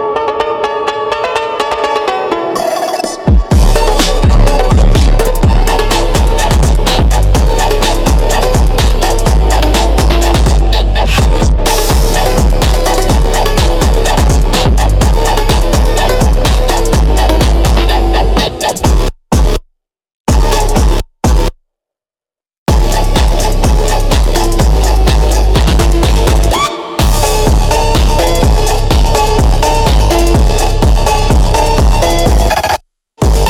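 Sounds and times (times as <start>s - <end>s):
bass-boosted Brazilian phonk music: 0.2s - 19.6s, 20.3s - 21.5s, 22.7s - 33.4s.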